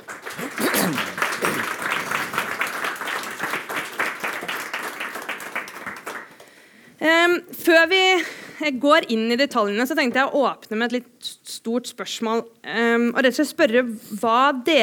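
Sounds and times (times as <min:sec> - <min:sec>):
audience applauding: 0:00.0 - 0:06.5
speech: 0:00.4 - 0:01.1, 0:07.6 - 0:14.8.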